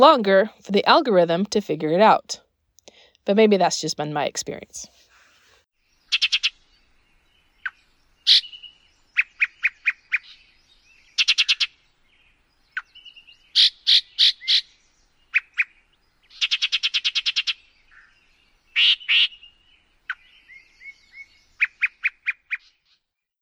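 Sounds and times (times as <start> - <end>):
speech: 0.0 - 2.4, 3.2 - 5.0
Yellow-breasted Chat singing with harsh croaks, whistles and chattering: 5.9 - 23.1.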